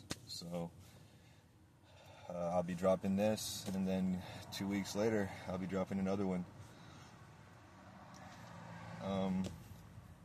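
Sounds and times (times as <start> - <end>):
speech: 0.4 - 0.9, 2.3 - 6.6, 9.0 - 9.6
low steady car interior rumble: 2.6 - 10.2.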